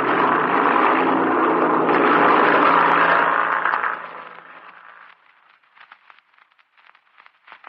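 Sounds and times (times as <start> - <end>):
airplane engine roaring while taxiing out and taking off: 0.0 - 5.2
faint crackling: 3.2 - 7.6.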